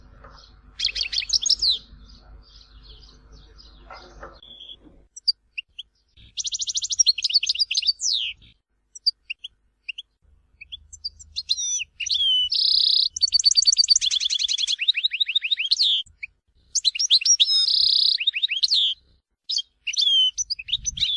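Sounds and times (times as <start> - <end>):
European goldfinch twittering song: 0.2 - 21.1.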